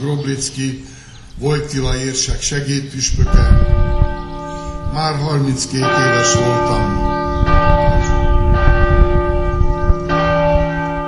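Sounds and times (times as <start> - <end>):
speech: 0.0 - 4.0, 4.9 - 7.0
church bell ringing: 3.2 - 11.0.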